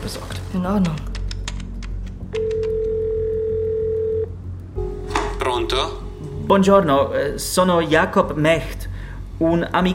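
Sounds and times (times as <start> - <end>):
speech: 0.0 - 1.1, 5.7 - 8.8, 9.4 - 9.9
ringing tone of an outgoing telephone call: 2.4 - 4.3.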